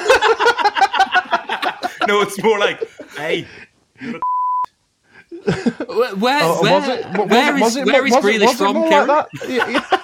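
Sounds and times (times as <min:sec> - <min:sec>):
laughter: 0:00.0 - 0:04.2, 0:05.2 - 0:07.5, 0:08.8 - 0:10.0
speech: 0:02.1 - 0:04.3, 0:05.4 - 0:10.0
censor bleep over a voice: 0:04.2 - 0:04.7.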